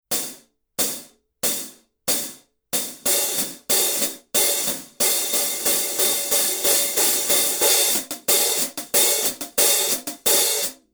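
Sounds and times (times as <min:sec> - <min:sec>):
big beat hi-hat pattern on Paiste cymbals: 0:02.8 - 0:10.8.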